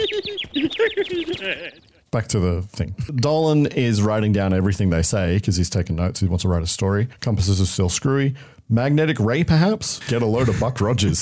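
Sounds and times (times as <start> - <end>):
laughter: 0.0 - 1.8, 10.0 - 11.2
bird calling in squawky clucking chirps: 0.0 - 2.0
speech: 0.0 - 11.2.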